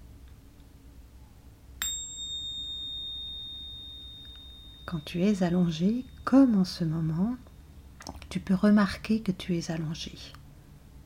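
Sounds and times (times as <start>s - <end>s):
small bell ding opening a guided relaxation exercise: 1.8s - 6.6s
speech: 4.9s - 7.5s, 8.3s - 10.4s.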